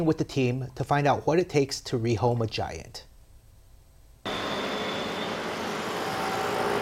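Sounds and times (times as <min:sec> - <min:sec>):
speech: 0:00.0 - 0:03.1
busy city intersection traffic roar of engines: 0:04.3 - 0:06.8.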